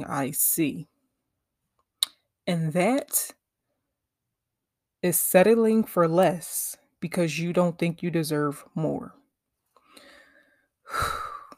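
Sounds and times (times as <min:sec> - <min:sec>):
speech: 0:00.0 - 0:00.9, 0:02.4 - 0:03.4, 0:05.0 - 0:09.2, 0:10.9 - 0:11.2
deep breath picked up close by a microphone: 0:09.8 - 0:11.5.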